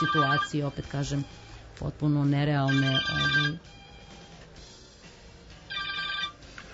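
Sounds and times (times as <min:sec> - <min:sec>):
telephone ringing in a short bright trilling burst: 0:00.0 - 0:01.0, 0:02.6 - 0:03.7, 0:05.7 - 0:06.5
speech: 0:00.0 - 0:03.8.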